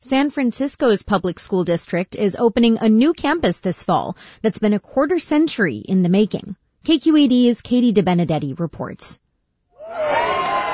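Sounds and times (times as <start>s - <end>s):
speech: 0.1s - 9.2s
kindergarten children cheering and shouting at a new school opening: 9.8s - 10.7s.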